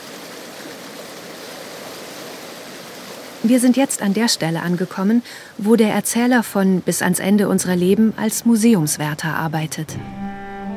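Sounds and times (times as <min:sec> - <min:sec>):
river water flowing: 0:00.0 - 0:10.0
speech: 0:03.4 - 0:10.2.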